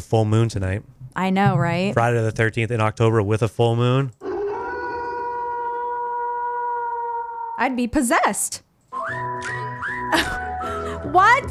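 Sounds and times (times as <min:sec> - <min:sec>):
speech: 0:00.0 - 0:04.2, 0:07.6 - 0:08.7, 0:10.1 - 0:10.4, 0:11.1 - 0:11.4
single long mournful wolf howl: 0:04.2 - 0:07.7
sliding whistle sound effect: 0:08.9 - 0:10.2.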